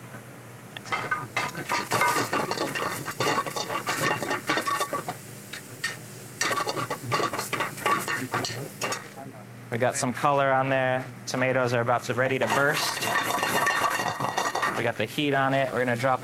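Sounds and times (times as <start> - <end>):
utensil clattering and scraping against the pan: 1.0 - 5.2, 5.8 - 9.1, 12.4 - 14.9
speech: 9.8 - 13.2, 14.8 - 16.2.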